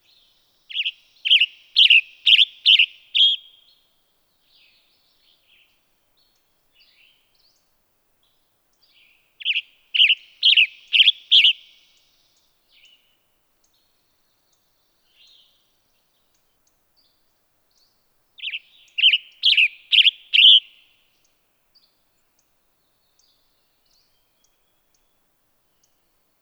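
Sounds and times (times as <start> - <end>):
Western Tanager calling: 0.7 - 3.5, 9.5 - 11.8, 18.4 - 20.7.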